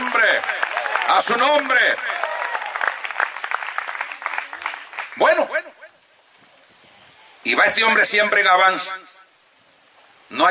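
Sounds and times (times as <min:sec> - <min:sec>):
audience applauding: 0:00.0 - 0:05.3
speech: 0:01.1 - 0:02.2, 0:07.5 - 0:09.0, 0:10.4 - 0:10.5.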